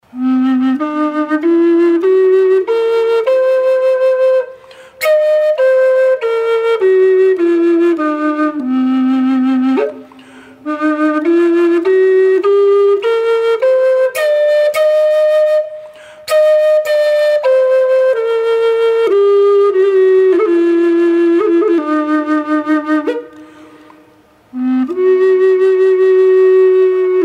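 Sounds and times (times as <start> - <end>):
flute in C minor with reverb: 0.0 - 27.2.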